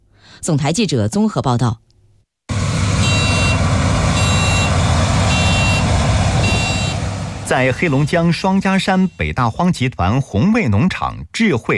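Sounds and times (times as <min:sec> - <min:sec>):
speech: 0:00.4 - 0:01.9, 0:07.5 - 0:11.7
driverless combine harvester engine rumble in a field: 0:02.5 - 0:09.1
high warning beeps: 0:03.0 - 0:03.6, 0:04.2 - 0:07.0, 0:07.6 - 0:09.2.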